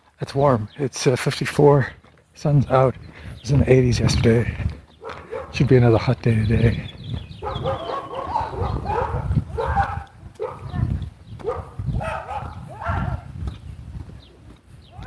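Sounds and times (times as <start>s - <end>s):
speech: 0.2s - 7.0s
dogs behind a fence barking: 4.9s - 5.8s, 7.2s - 13.4s
little dachshund barking at dogs behind a fence: 5.0s - 5.6s, 7.4s - 13.3s.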